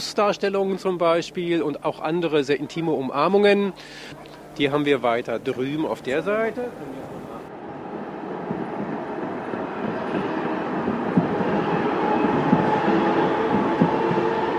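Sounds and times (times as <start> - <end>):
speech: 0.0 - 7.2
tram rumbling past the town hall: 4.4 - 14.5.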